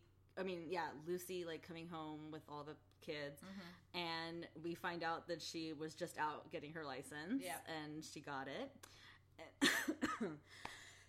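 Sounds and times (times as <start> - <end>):
speech: 0.4 - 9.6, 10.2 - 10.8
person coughing harshly: 9.6 - 10.4.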